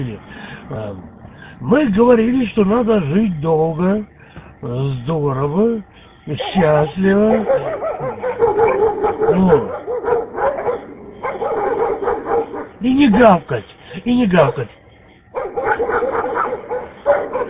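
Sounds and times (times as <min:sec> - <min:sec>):
speech: 0:00.0 - 0:09.8, 0:12.8 - 0:14.8
pack of stray dogs barking and yelping by a car: 0:06.2 - 0:13.4, 0:15.2 - 0:17.4.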